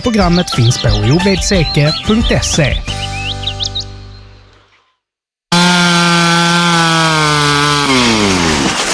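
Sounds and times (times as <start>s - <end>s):
speech: 0.0s - 3.1s
wood-cutting saw motor whining: 5.5s - 8.8s.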